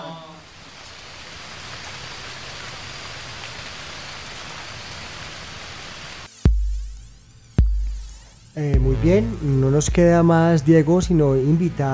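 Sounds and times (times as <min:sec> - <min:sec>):
steady hissing rainfall: 0:00.4 - 0:06.3
speech: 0:08.6 - 0:11.9.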